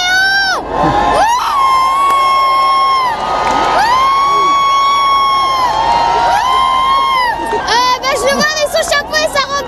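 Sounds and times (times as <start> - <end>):
high-pitched shouts and whoops from crowd of believers: 0.0 - 9.6
jubilant crowd of believers cheering for the pope: 0.0 - 9.6.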